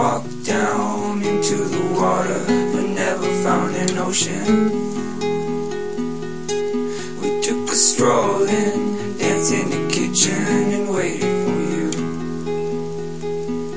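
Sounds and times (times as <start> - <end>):
voice: 0.0 - 4.8, 7.0 - 12.0
folksy guitar: 0.0 - 13.7.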